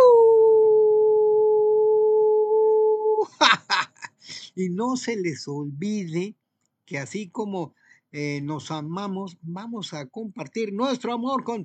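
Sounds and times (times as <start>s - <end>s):
person mimicking a long steady howl: 0.0s - 3.3s
speech: 4.6s - 11.6s.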